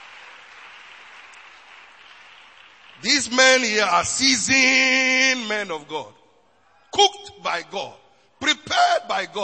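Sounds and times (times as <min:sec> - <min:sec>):
large crowd clapping: 0:00.0 - 0:04.5
speech: 0:03.0 - 0:06.2, 0:07.0 - 0:09.4.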